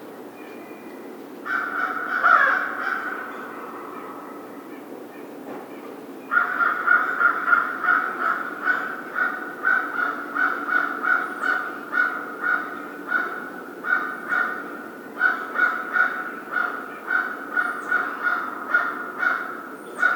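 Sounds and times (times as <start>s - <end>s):
American crow giving harsh caws: 1.5s - 4.1s, 6.3s - 20.1s.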